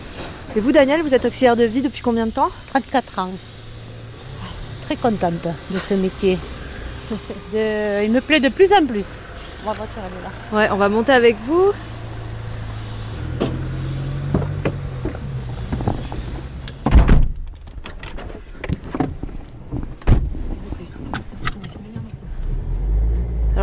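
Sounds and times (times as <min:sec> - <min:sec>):
car engine rumble inside a car in Salles-Courbatiers, France: 0:00.0 - 0:23.6
speech: 0:00.5 - 0:03.5, 0:04.9 - 0:11.9
laughter: 0:07.0 - 0:07.5
clicks and thumps inside a car: 0:14.3 - 0:22.3.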